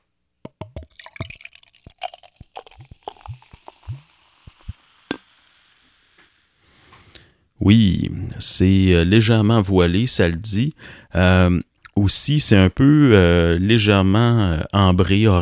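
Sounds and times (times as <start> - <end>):
beer brewed with orange zest, coriander and raw hops being poured: 0.5 - 6.4
speech: 7.7 - 15.4.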